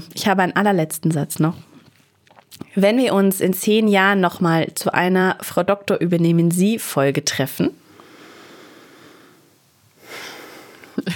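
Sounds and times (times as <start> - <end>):
speech: 0.1 - 1.7, 2.8 - 7.8
deep inhale: 7.9 - 11.0.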